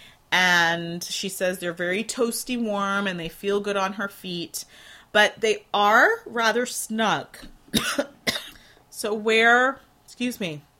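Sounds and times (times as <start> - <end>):
speech: 0.3 - 8.2, 9.0 - 10.7
person clearing throat: 7.7 - 8.6
person coughing: 7.7 - 8.7.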